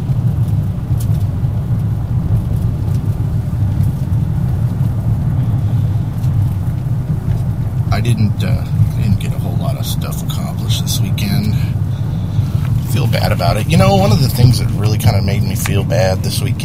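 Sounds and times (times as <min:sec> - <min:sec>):
car driving on a slick road: 0:00.0 - 0:16.6
speech: 0:13.4 - 0:16.6.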